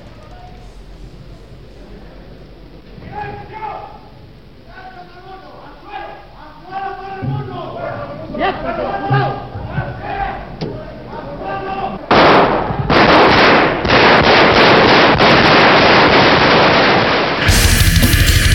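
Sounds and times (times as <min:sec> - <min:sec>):
loud steady hum with crackle: 0:00.0 - 0:18.4
gunshots in an archival recording: 0:12.1 - 0:17.8.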